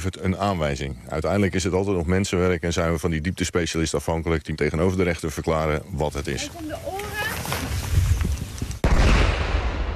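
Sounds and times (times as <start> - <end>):
speech: 0.0 - 7.1
confiscated fireworks crackling during testing: 6.2 - 9.7
confiscated firework bang during testing: 8.8 - 9.9.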